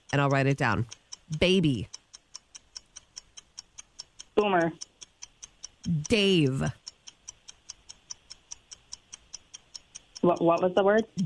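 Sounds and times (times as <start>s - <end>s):
ticking clock timer: 0.0s - 11.2s
speech: 0.1s - 2.0s, 4.4s - 4.9s, 5.8s - 6.8s, 10.2s - 11.2s.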